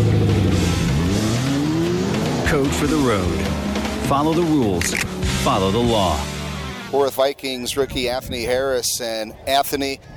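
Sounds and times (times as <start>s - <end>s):
V8 car engine revving and accelerating: 0.0s - 7.0s
speech: 2.5s - 6.3s, 6.9s - 10.1s.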